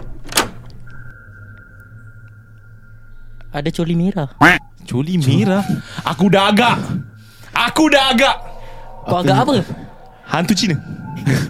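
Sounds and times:
toilet door being opened: 0.0s - 0.8s
thin steady tone: 1.2s - 11.2s
speech: 3.5s - 11.4s.

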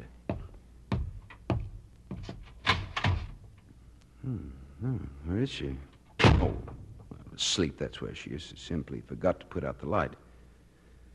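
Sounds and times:
door opening and shutting with thumps and clunks: 2.2s - 3.4s, 6.2s - 7.1s
speech: 4.2s - 6.7s, 7.4s - 10.2s.

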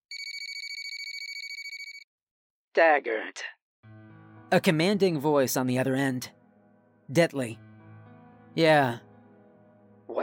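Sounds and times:
telephone ringing with trilling electronic tones: 0.1s - 2.1s
speech: 2.8s - 3.6s, 4.5s - 6.4s, 7.1s - 7.7s, 8.6s - 9.1s.

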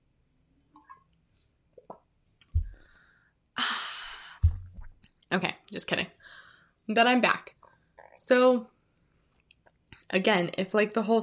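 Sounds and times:
low swallow-like thump: 2.6s - 2.9s, 4.4s - 5.0s
long audible breath out between sips: 2.7s - 4.6s, 6.2s - 6.7s
small wet gulps of drinking water: 4.2s - 5.1s
speech: 5.3s - 7.6s, 8.3s - 8.7s, 10.1s - 11.2s.

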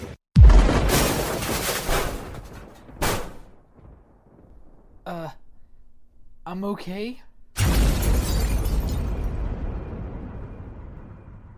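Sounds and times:
missile strike explosion: 0.4s - 2.3s, 7.6s - 11.5s
speech: 6.5s - 7.8s.

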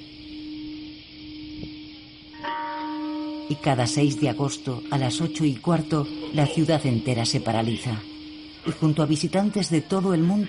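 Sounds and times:
deep memorial bell ringing: 1.4s - 10.4s
speech: 3.5s - 10.4s.

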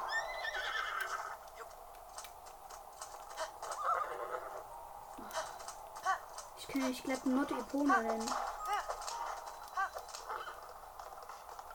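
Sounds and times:
horse whinnying with a shrill wavering neigh: 0.0s - 1.4s, 3.8s - 4.6s
horse hooves clopping: 0.0s - 11.7s
speech: 6.7s - 8.5s.

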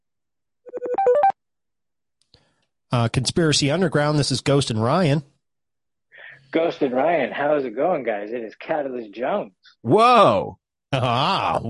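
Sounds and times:
phone ringtone for incoming call playing a melodic electronic jingle: 0.7s - 1.4s
speech: 2.9s - 5.3s, 6.5s - 11.6s.

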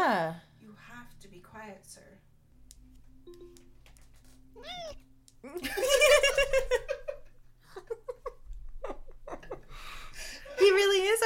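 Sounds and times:
cat meowing into the microphone: 4.6s - 5.6s
people giggling and laughing loudly: 5.6s - 10.6s.

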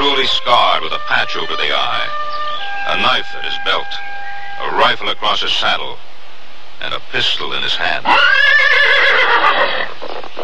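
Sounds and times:
speech: 0.3s - 2.3s, 2.9s - 6.1s, 6.8s - 10.4s
horse neighing as it rears: 8.0s - 10.4s.

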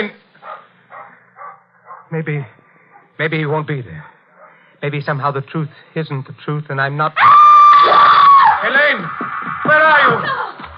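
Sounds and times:
speech: 0.0s - 0.2s, 2.1s - 2.6s, 3.2s - 4.2s, 4.8s - 7.5s, 8.7s - 10.6s
steady low hum: 0.0s - 9.4s
neighbours' dog barking in a garden: 0.4s - 2.2s, 2.9s - 3.2s, 4.0s - 4.7s.

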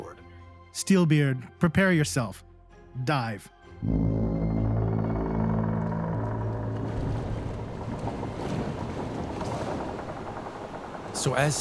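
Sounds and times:
speech: 0.8s - 4.2s, 11.2s - 11.5s
wooden ship's timbers groaning and creaking: 4.5s - 11.5s
water pouring into a hole in a wooden ship: 4.8s - 11.5s.

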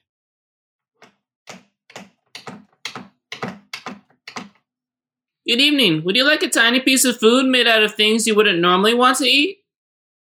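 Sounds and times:
typewriter keys clacking: 1.5s - 4.6s
speech: 5.5s - 9.6s.

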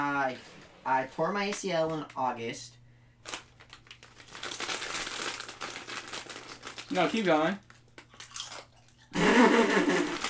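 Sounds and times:
speech: 0.0s - 3.4s, 6.9s - 7.6s
crunching potato chips: 3.2s - 10.2s
laughter: 9.2s - 10.2s.

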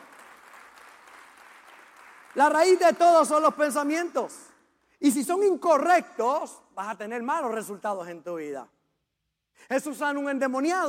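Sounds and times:
crowd of many hands applauding: 0.0s - 2.8s
speech: 2.3s - 8.8s, 9.6s - 10.8s.

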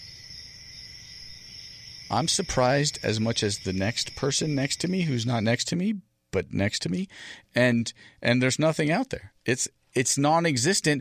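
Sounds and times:
high-pitched chorus of crickets chirping: 0.0s - 5.6s
speech: 2.1s - 10.9s.

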